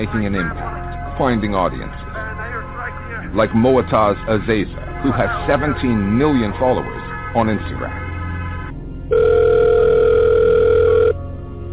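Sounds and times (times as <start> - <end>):
speech: 0.0 - 2.0, 3.2 - 8.0, 9.1 - 9.6
telephone ringing with a steady electronic tone: 9.1 - 11.2.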